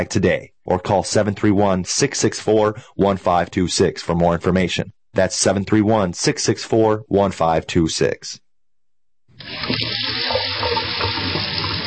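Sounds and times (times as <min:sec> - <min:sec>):
speech: 0:00.0 - 0:08.4, 0:09.4 - 0:10.8
water running from a faucet into a sink: 0:09.4 - 0:11.8.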